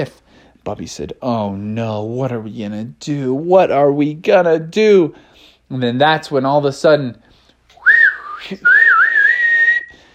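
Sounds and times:
speech: 0:00.0 - 0:07.2, 0:08.4 - 0:08.8
loud human whistle calling a golden osprey: 0:07.8 - 0:10.0.

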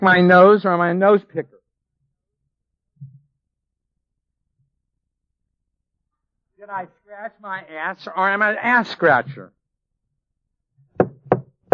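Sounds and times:
speech: 0:00.0 - 0:01.6, 0:06.6 - 0:09.6
knocks on a wooden podium: 0:11.0 - 0:11.7.

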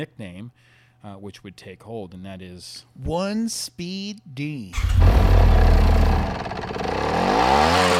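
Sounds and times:
speech: 0:00.0 - 0:06.0, 0:07.1 - 0:07.9
motorcycle engine revving from a deep rumbling idle: 0:04.8 - 0:07.9.

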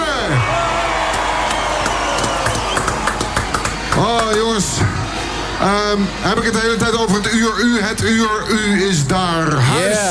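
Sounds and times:
loud audience cheering and whooping: 0:00.1 - 0:05.6
dense wash of applause for a performer: 0:00.8 - 0:04.5
speech: 0:06.0 - 0:10.1.

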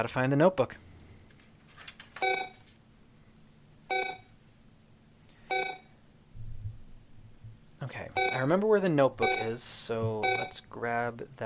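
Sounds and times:
speech: 0:00.0 - 0:00.9, 0:08.4 - 0:11.4
video game timer beeping: 0:02.2 - 0:02.6, 0:03.9 - 0:04.3, 0:05.5 - 0:05.9, 0:08.1 - 0:08.6, 0:09.2 - 0:09.6, 0:10.2 - 0:10.6.

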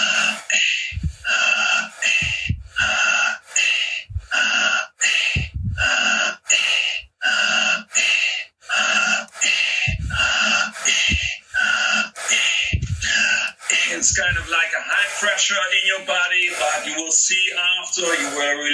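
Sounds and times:
low thumps: 0:00.0 - 0:03.3, 0:04.0 - 0:04.4, 0:05.3 - 0:06.2, 0:09.8 - 0:15.3
loud fast rhythmic forceful breathing: 0:00.0 - 0:18.7
speech: 0:14.5 - 0:18.7.

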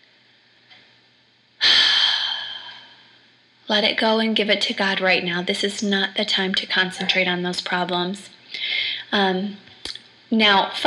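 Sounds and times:
deep breath in and out: 0:01.6 - 0:03.2, 0:08.5 - 0:09.1
speech: 0:03.7 - 0:09.7, 0:10.3 - 0:10.8.

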